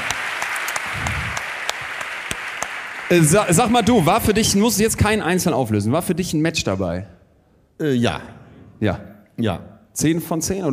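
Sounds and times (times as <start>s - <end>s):
audience applause: 0.0s - 4.8s
speech: 3.1s - 7.2s, 7.8s - 10.7s.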